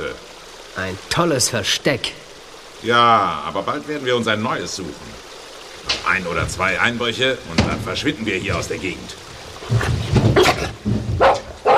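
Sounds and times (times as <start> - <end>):
speech: 0.8 - 2.2, 2.8 - 9.9
dog barking while chasing a rat: 11.2 - 11.7.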